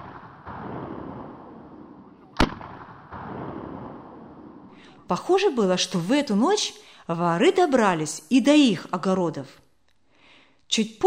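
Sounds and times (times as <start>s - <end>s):
single sharp loud gunshot: 0.0s - 4.7s
speech: 5.0s - 9.6s, 10.7s - 11.0s.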